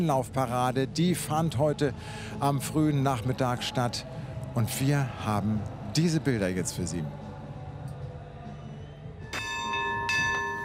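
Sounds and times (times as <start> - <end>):
speech: 0.0 - 7.2
ship's bell struck firmly: 9.3 - 10.6.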